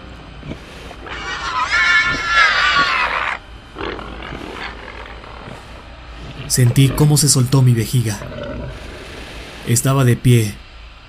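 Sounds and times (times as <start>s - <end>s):
huge obese pig grunting: 0.0s - 9.7s
huge obese pig squealing: 0.5s - 9.0s
speech: 6.6s - 8.4s, 9.7s - 10.6s.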